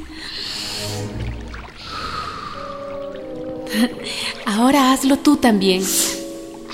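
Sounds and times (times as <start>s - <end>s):
slow deep breathing in and out as a breathing exercise: 0.0s - 3.0s
soft steady music: 0.0s - 6.7s
speech: 3.8s - 6.1s.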